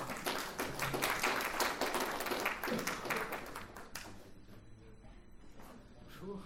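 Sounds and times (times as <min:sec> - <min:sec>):
sizable audience applauding: 0:00.0 - 0:04.2.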